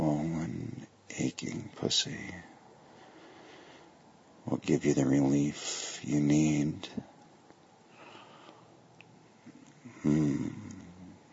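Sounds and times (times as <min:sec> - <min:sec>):
speech: 0:01.2 - 0:02.5, 0:04.5 - 0:07.1, 0:10.0 - 0:10.6
heavy voiced breathing: 0:02.8 - 0:04.0, 0:07.9 - 0:08.8, 0:09.8 - 0:11.3.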